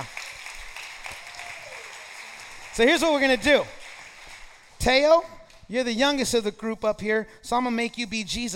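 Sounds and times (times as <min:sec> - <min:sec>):
audience applause: 0:00.0 - 0:04.8
speech: 0:02.8 - 0:03.8, 0:04.8 - 0:08.5.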